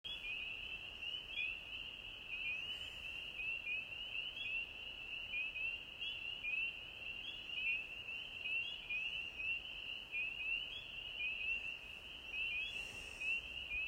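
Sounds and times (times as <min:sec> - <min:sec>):
frogs calling in a dense chorus: 0:00.1 - 0:13.8.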